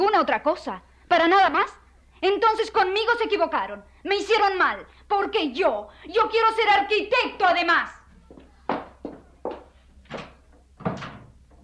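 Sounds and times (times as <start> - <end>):
speech: 0.2 - 8.0
door closing firmly: 10.1 - 11.6.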